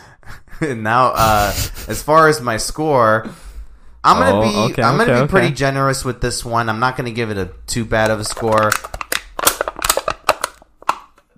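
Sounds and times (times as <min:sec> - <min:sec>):
speech: 0:00.6 - 0:03.4, 0:04.0 - 0:09.0
empty aluminum drink can rolling across a hard surface: 0:08.0 - 0:11.2.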